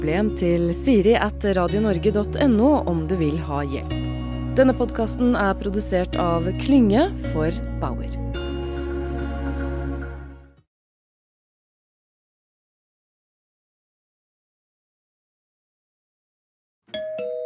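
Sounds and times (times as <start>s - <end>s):
speech: 0.0s - 8.2s
dense full-bodied music: 0.0s - 10.6s
bright chiming doorbell ding-dong: 16.9s - 17.4s.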